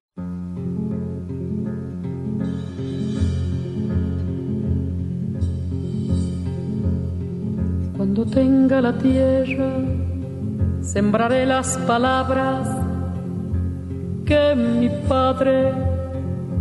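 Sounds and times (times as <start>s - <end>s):
full instrumental accompaniment: 0.2s - 16.6s
woman singing a slow sustained melody: 7.9s - 13.4s, 14.2s - 16.6s
speech: 8.0s - 10.0s, 10.9s - 12.8s, 14.3s - 15.9s.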